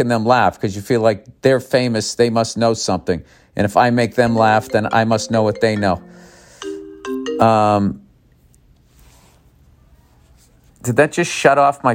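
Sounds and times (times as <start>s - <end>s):
speech: 0.0s - 6.3s, 7.4s - 8.0s, 10.8s - 11.9s
phone ringtone of stepped electronic notes: 4.3s - 8.0s.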